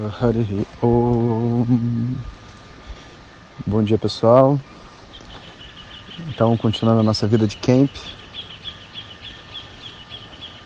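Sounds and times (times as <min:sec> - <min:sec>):
speech: 0:00.0 - 0:02.4, 0:03.6 - 0:04.8, 0:06.2 - 0:08.2
waterfall rushing: 0:00.0 - 0:10.6
birds chirping: 0:05.0 - 0:10.6.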